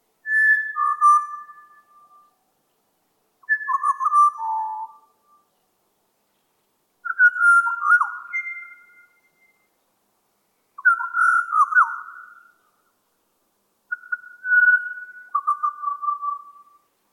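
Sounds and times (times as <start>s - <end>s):
pied butcherbird singing solo: 0.2s - 2.4s, 3.4s - 5.7s, 7.0s - 9.8s, 10.8s - 12.8s, 13.9s - 16.9s.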